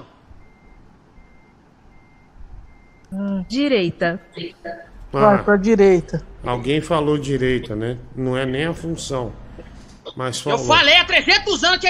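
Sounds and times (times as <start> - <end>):
truck reversing alarm beeping as the truck parks: 0.0 - 4.4
low rumbling truck engine: 0.0 - 10.0
speech: 3.1 - 9.4, 10.1 - 11.8.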